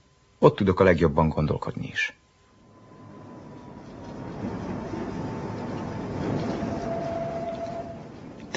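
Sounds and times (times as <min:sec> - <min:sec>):
speech: 0:00.4 - 0:02.2
thin metallic whine of a moving tram: 0:02.3 - 0:08.5
tram rumbling and clattering on rails: 0:02.5 - 0:08.5.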